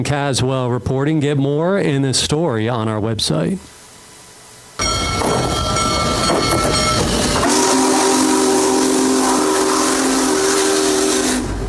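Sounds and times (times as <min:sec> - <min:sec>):
speech: 0:00.0 - 0:03.8
heavy hiss and rumble of the passing steam train: 0:04.8 - 0:11.6
steam locomotive whistle blowing: 0:04.8 - 0:11.6.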